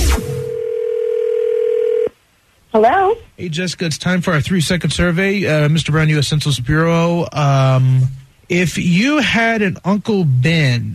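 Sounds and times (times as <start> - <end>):
steady electronic telephone tone: 0.2 - 2.2
speech: 2.8 - 10.9.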